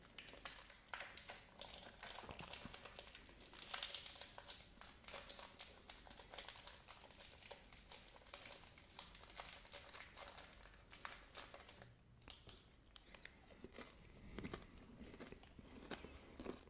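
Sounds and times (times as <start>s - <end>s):
snack bar wrapper crinkling: 0.0s - 13.2s
crunchy bites and chewing of a vegan oat snack bar with rice crisps: 12.4s - 16.6s.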